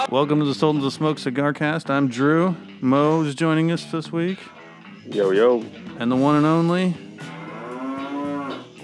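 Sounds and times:
speech: 0.1s - 7.3s
person imitating a cow mooing: 5.1s - 8.8s.

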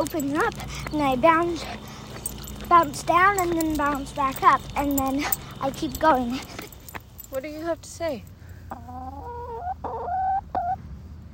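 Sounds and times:
speech: 0.0s - 1.9s, 2.7s - 6.6s, 7.3s - 9.1s
low steady hum: 0.0s - 11.3s
pet chicken clucking and squawking: 8.7s - 10.8s.

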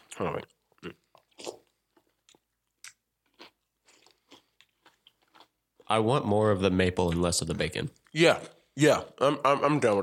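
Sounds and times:
person chewing crunchy cereal with soggy flakes: 0.0s - 6.1s
speech: 0.2s - 1.0s, 5.9s - 10.0s.

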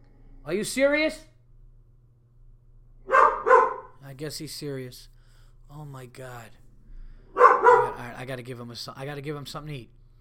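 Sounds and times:
speech: 0.4s - 1.3s, 4.1s - 6.6s, 8.0s - 10.0s
dog barking: 3.0s - 4.0s, 7.3s - 8.1s.

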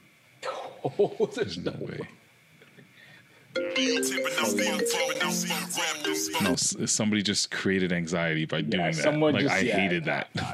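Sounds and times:
speech: 0.8s - 2.2s, 3.8s - 10.5s
electronic phone ringtone melody: 3.6s - 6.7s.

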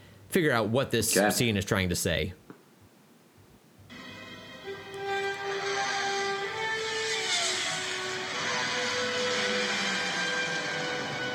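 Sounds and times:
speech: 0.3s - 2.4s
urban traffic engines humming: 5.1s - 11.3s
broad wash of urban road noise: 5.2s - 11.3s
tonal whines in urban traffic: 5.4s - 11.3s.

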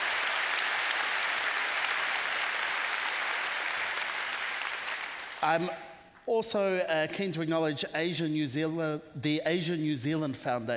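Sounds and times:
sustained applause from a sizable crowd: 0.0s - 5.7s
speech: 5.4s - 10.7s.

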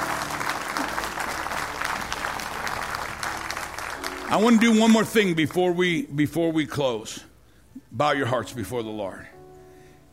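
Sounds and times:
audience clapping as a clap offering: 0.0s - 5.6s
speech: 4.3s - 7.3s, 8.0s - 9.3s.

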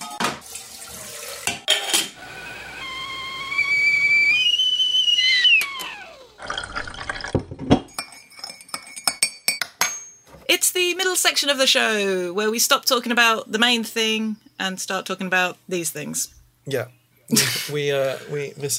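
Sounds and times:
running water: 0.0s - 4.9s
cups and dishes clinking: 1.5s - 2.2s, 6.4s - 10.3s
kettle whistling: 2.2s - 6.8s
speech: 10.8s - 18.7s.

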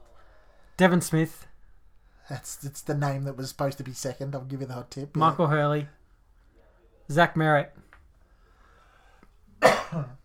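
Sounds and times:
speech: 0.8s - 1.5s, 2.3s - 6.0s, 7.1s - 7.9s, 9.9s - 10.2s
sharp cough: 9.6s - 10.2s.

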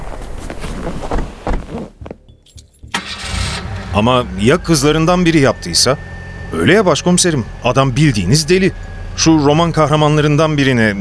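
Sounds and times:
speech: 0.8s - 1.3s, 4.0s - 11.0s
car engine cranking with rough mechanical rattling and starting: 2.5s - 11.0s.

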